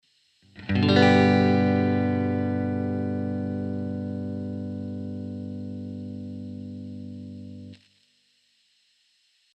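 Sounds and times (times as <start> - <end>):
guitar low G note: 0.5 - 7.8.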